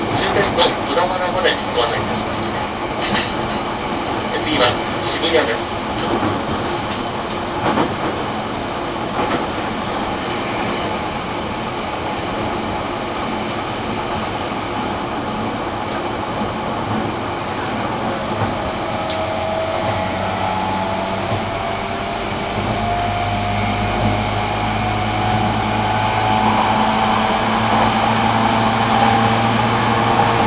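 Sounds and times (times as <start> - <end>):
E231 series commuter train interior running rumble: 0.0 - 30.4
low hum: 17.2 - 30.4
high train motor whine as the train speeds up: 17.3 - 30.4.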